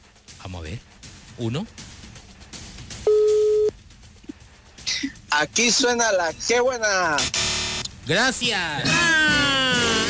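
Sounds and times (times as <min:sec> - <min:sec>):
speech: 0:00.5 - 0:01.8, 0:05.0 - 0:07.4, 0:08.0 - 0:09.4
telephone ringing tone beep on an outgoing call: 0:03.1 - 0:03.7.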